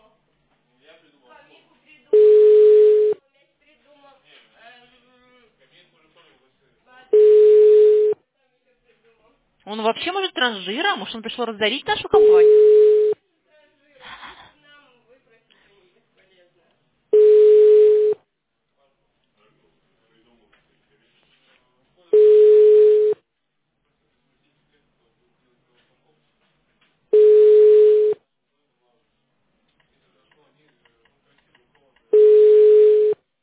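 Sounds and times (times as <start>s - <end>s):
telephone ringback tone of an unanswered call: 2.2s - 3.2s, 7.2s - 8.2s, 12.2s - 13.2s, 17.2s - 18.2s, 22.2s - 23.2s, 27.2s - 28.2s, 32.2s - 33.2s
speech: 9.7s - 12.7s.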